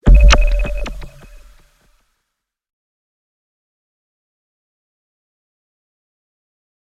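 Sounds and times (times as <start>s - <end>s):
sound pulse effect: 0.0s - 1.6s.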